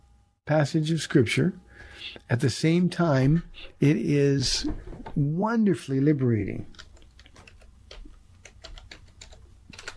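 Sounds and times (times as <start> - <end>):
speech: 0.5 - 6.8
typing on a computer keyboard: 6.7 - 9.9.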